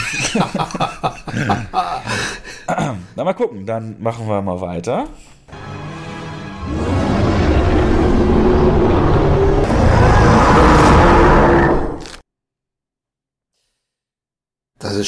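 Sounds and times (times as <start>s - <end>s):
laughter: 0.0s - 2.6s
speech: 0.1s - 1.0s, 2.8s - 5.3s
film monster rumbling and growling: 6.5s - 12.2s.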